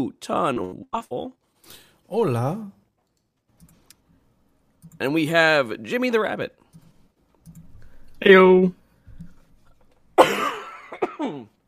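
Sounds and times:
speech: 0.0s - 2.8s, 4.9s - 6.6s, 8.2s - 8.8s, 11.2s - 11.6s
person coughing: 10.2s - 11.5s.

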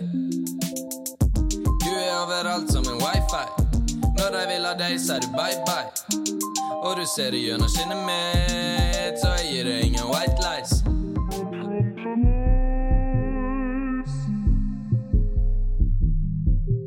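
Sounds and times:
mellow pop song with synth chords, bass and soft percussion: 0.0s - 16.6s
speech: 4.2s - 10.9s, 12.1s - 12.6s.

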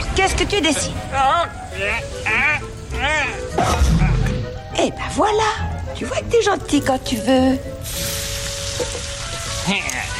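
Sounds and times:
speech: 0.2s - 4.1s, 4.8s - 8.2s, 8.8s - 10.1s
bacon sizzling in a frying pan: 7.8s - 10.1s.

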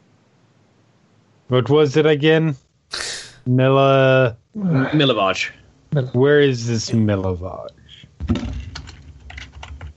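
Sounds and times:
speech: 1.5s - 8.5s
fingers typing on a computer keyboard: 8.4s - 9.9s.

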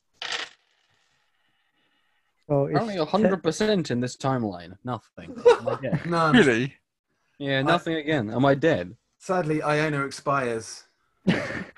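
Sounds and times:
handful of dice rolled for a stamina roll: 0.2s - 0.7s
speech: 2.5s - 6.8s, 7.4s - 11.7s.

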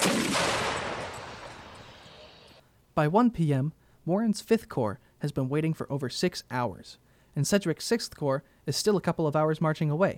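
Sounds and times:
distant cannon fire: 0.0s - 2.6s
speech: 3.0s - 10.1s.

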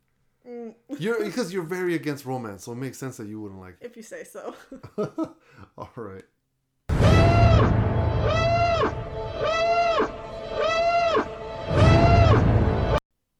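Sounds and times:
speech: 0.7s - 6.3s
laughter: 4.5s - 6.0s
loud siren sound effect wailing as a spoiler alert: 6.9s - 13.0s.

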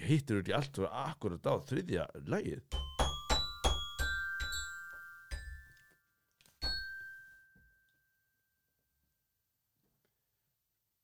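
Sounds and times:
speech: 0.1s - 2.8s
bells played clumsily as a tune: 2.7s - 8.7s.

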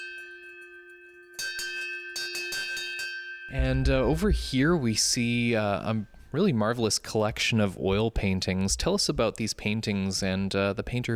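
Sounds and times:
handbell on an old fire cart ringing: 0.0s - 3.8s
speech: 3.5s - 11.1s.

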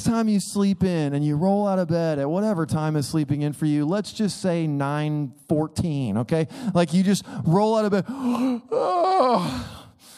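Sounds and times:
speech: 0.0s - 9.8s
drawn-out voiced yawn: 8.1s - 10.0s.

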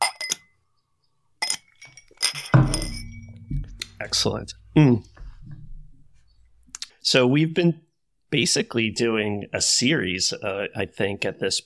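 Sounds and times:
glasses clinking in a toast: 0.0s - 0.6s, 1.4s - 4.1s
speech: 4.0s - 5.1s, 7.1s - 11.6s.

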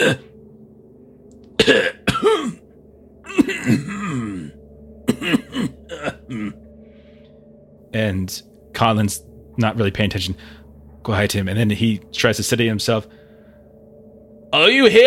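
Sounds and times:
man coughing, a guard standing at a gate: 0.0s - 0.3s, 1.6s - 6.6s
speech: 0.0s - 0.3s, 3.6s - 4.3s, 8.0s - 13.2s, 14.5s - 15.0s
man's raspy throat-clearing: 3.3s - 6.6s.

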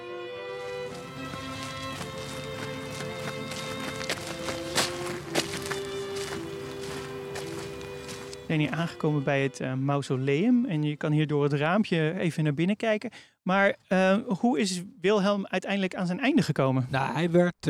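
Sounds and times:
footsteps of people walking outdoors on a hard surface in a park: 0.5s - 8.5s
speech: 8.5s - 17.6s.

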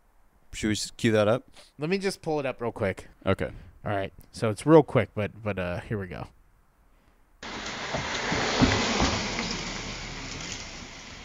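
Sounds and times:
speech: 0.6s - 6.4s
fast car passing and slowing down: 7.4s - 11.2s.

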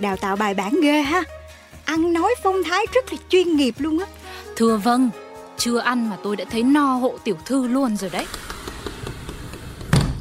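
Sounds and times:
speech: 0.0s - 8.5s
Japanese-style wooden sliding door rolling open: 8.0s - 10.1s.

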